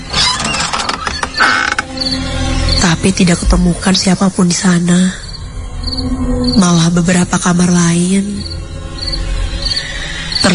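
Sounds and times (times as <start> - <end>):
room door creaking open: 0.0 - 2.8
speech: 2.8 - 5.2, 5.8 - 8.6.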